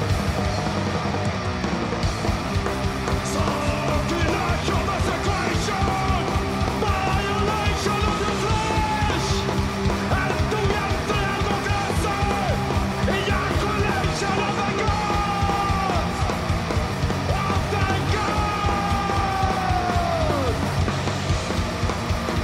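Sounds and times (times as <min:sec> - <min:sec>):
loud dense band mix with driving instruments: 0:00.0 - 0:22.4
hoarse shouted vocals: 0:03.2 - 0:16.4, 0:17.2 - 0:20.7.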